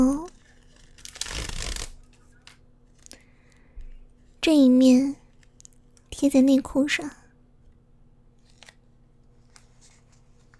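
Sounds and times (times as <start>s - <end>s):
sanitary pad plastic wrapper tearing open: 0.2s - 3.2s
speech: 4.5s - 5.2s, 6.2s - 7.2s.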